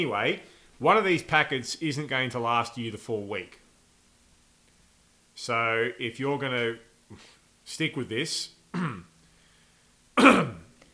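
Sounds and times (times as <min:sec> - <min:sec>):
speech: 0:00.0 - 0:03.6, 0:05.4 - 0:09.1, 0:10.2 - 0:10.6
throat clearing: 0:08.7 - 0:09.1, 0:10.2 - 0:10.8.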